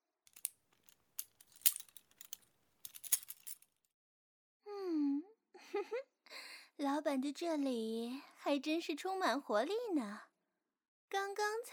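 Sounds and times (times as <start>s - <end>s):
bunch of keys dropped, clattering and jangling: 0.3s - 3.7s
speech: 6.8s - 10.3s, 11.1s - 11.7s.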